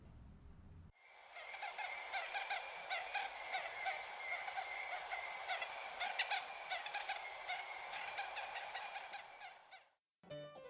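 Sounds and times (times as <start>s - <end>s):
honeyguide bird guiding call signaling a bee nest: 1.4s - 9.9s.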